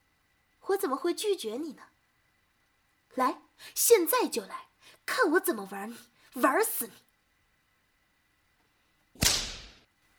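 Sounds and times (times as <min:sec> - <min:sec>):
speech: 0:00.7 - 0:02.0, 0:03.2 - 0:07.0
whip crack: 0:09.2 - 0:09.9.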